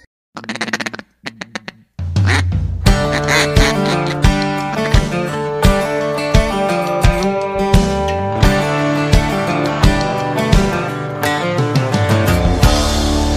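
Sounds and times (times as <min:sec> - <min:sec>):
duck quacking: 0:00.4 - 0:05.3
droning musical-sounding background: 0:02.9 - 0:13.3.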